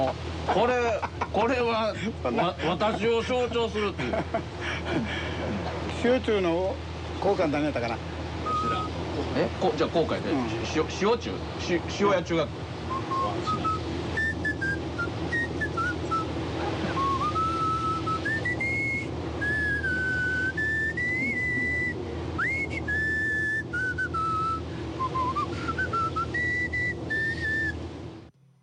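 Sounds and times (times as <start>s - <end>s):
speech: 0.0s - 12.7s
steady low hum: 0.0s - 28.6s
laughter: 0.9s - 3.2s, 3.9s - 5.6s
person whistling a wandering tune through their teeth: 8.4s - 8.9s, 12.9s - 16.3s, 16.9s - 27.8s.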